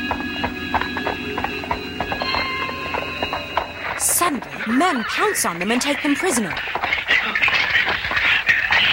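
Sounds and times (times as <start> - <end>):
faint sustained tonal hum: 0.0 - 6.8
horses' hooves clopping on a hard surface in an alley: 0.0 - 8.8
speech: 4.4 - 7.5.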